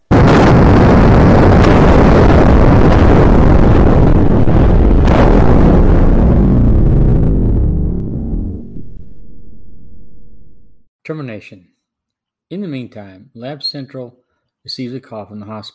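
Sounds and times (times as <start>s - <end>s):
massive H-bomb explosion blast: 0.0s - 10.9s
speech: 11.1s - 11.8s, 12.5s - 15.7s.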